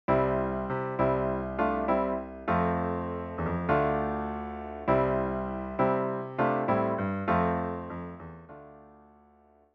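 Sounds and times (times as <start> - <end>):
piano vamp playing three chords as a song intro: 0.1 - 9.6.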